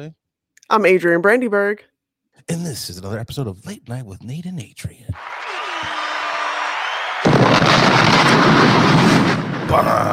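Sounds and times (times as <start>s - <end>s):
speech: 0.0s - 5.9s, 9.7s - 10.1s
bomb explosion boom: 7.2s - 10.1s.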